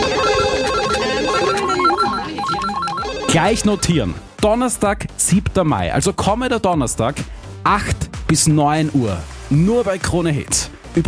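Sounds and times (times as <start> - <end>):
several telephones ringing with warbling electronic trills: 0.0 - 4.1
speech: 3.3 - 11.0.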